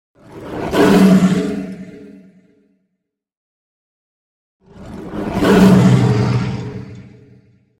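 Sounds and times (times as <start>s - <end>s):
big lion growl roar with echoes: 0.2s - 2.0s, 4.6s - 7.4s.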